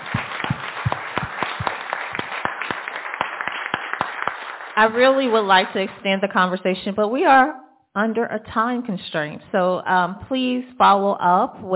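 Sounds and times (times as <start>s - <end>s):
audience applause for panelists: 0.0s - 6.0s
speech: 4.8s - 11.7s.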